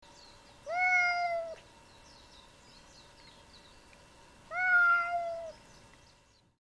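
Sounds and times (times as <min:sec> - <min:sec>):
cat meowing: 0:00.7 - 0:01.6, 0:04.5 - 0:05.5.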